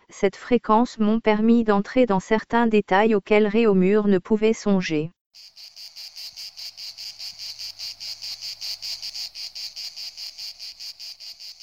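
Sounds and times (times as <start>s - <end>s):
speech: 0.1s - 5.7s
cicadas chirring: 5.4s - 11.6s.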